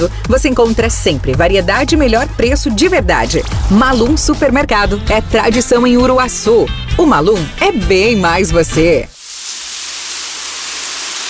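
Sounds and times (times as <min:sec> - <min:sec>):
speech: 0:00.0 - 0:09.1
shower water spray running: 0:03.1 - 0:04.2, 0:09.1 - 0:11.2.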